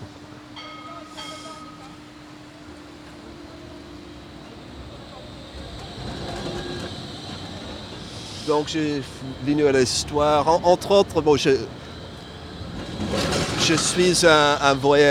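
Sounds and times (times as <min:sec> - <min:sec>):
tram rumbling past: 0:00.0 - 0:15.1
tram bell-like chime: 0:00.6 - 0:01.9
speech: 0:08.5 - 0:11.8, 0:13.6 - 0:15.1.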